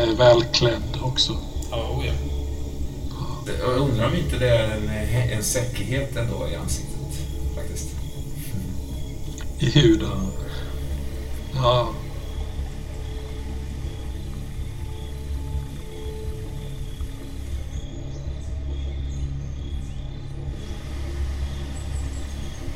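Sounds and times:
speech: 0.0s - 2.4s, 3.5s - 6.9s, 9.6s - 10.4s, 11.6s - 12.0s
crickets chirping loudly at night: 0.0s - 22.7s
steady low rumble: 0.0s - 22.7s.

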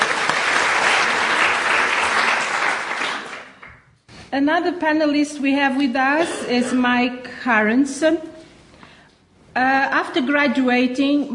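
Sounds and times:
audience applause welcoming a panel speaker: 0.0s - 3.7s
speech: 4.3s - 8.3s, 9.6s - 11.3s.

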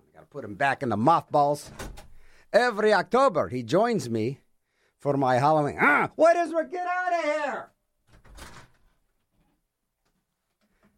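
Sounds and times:
speech: 0.3s - 4.4s, 5.0s - 7.7s
door shutting with a solid thud: 1.6s - 2.2s.

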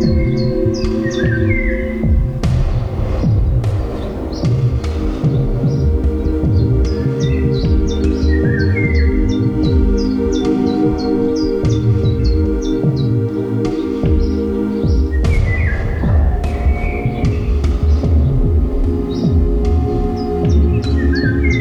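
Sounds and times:
birds chirping and whistling: 0.0s - 21.5s
loud steady low hum and throbbing drone: 0.0s - 21.5s.

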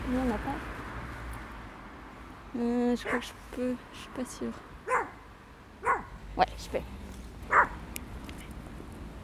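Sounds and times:
speech: 0.1s - 0.8s, 2.5s - 4.7s, 6.4s - 7.0s
dog barking: 3.0s - 3.3s, 4.9s - 5.2s, 5.8s - 6.2s, 7.5s - 7.8s.

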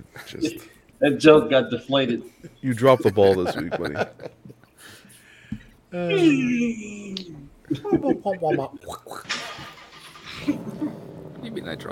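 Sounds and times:
speech: 0.0s - 5.0s, 5.9s - 9.3s, 10.4s - 11.9s
laughter: 2.4s - 5.2s, 7.7s - 11.1s
car engine starting and revving: 9.3s - 11.9s.

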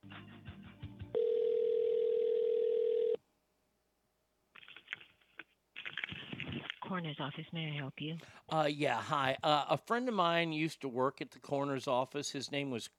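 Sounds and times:
telephone ringing tone during call transfer: 1.1s - 3.2s
speech: 6.9s - 12.9s.

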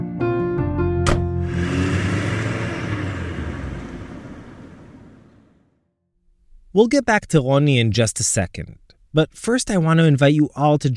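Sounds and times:
car engine starting with a sharp click: 1.1s - 5.6s
speech: 6.8s - 10.9s.

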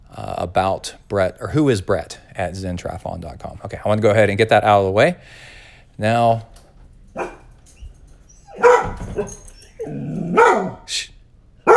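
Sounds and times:
speech: 0.5s - 6.5s, 9.2s - 11.0s
dog barking loudly: 7.2s - 7.5s, 8.4s - 10.9s.

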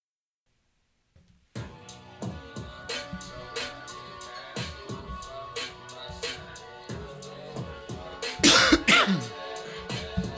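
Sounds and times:
music with a rhythmic beat: 1.5s - 10.3s
person coughing with raspy throat-clearing: 8.4s - 9.3s.

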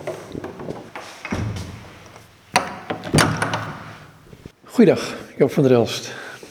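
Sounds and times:
door opening with handle rattle and wooden thumps: 0.0s - 4.5s
speech: 4.8s - 6.2s.

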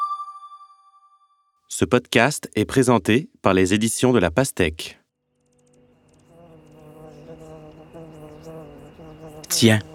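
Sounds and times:
speech: 1.8s - 5.0s, 9.6s - 9.9s
bee buzzing: 5.3s - 9.9s.

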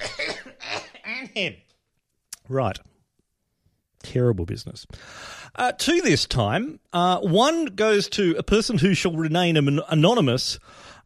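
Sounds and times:
harsh throaty dry cough: 0.0s - 1.4s
speech: 1.4s - 1.7s, 2.5s - 2.9s, 4.0s - 10.9s.

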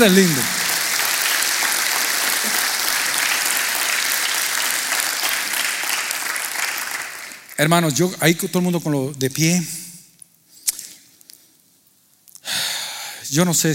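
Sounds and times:
speech: 0.0s - 0.5s, 7.6s - 9.8s, 13.3s - 13.7s
audience applause: 0.0s - 7.6s.

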